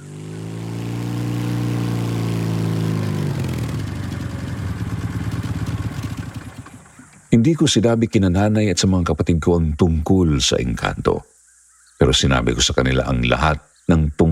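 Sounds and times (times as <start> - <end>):
motorized tricycle engine driving along: 0.0 - 7.3
speech: 7.4 - 11.3, 12.0 - 14.3.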